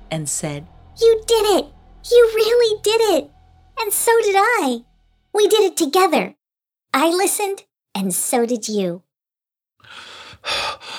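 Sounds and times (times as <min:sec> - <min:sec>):
speech: 0:00.1 - 0:09.1
breathless gasp: 0:09.8 - 0:10.9.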